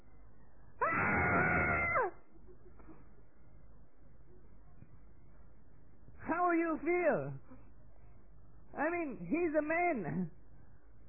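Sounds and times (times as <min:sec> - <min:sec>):
man screaming in shock: 0:00.8 - 0:02.1
speech: 0:06.8 - 0:07.4, 0:08.8 - 0:10.4.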